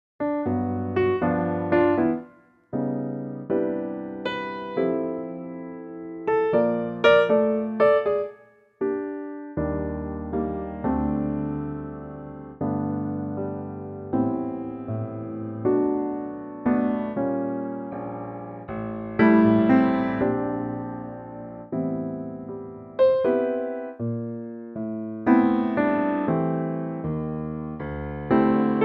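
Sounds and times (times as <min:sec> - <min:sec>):
piano note G: 0:00.2 - 0:28.8.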